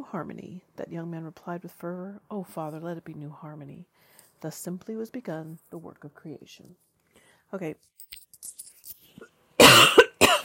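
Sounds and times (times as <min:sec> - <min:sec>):
speech: 0:00.0 - 0:06.9, 0:07.5 - 0:08.1
breathing: 0:03.9 - 0:04.4, 0:07.0 - 0:07.5
harsh coughs from a tickling throat: 0:09.6 - 0:10.4.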